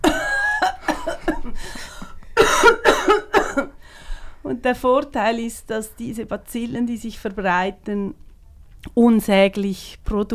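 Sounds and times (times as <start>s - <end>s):
person coughing: 0.0s - 3.8s
speech: 4.6s - 8.2s, 8.8s - 10.3s.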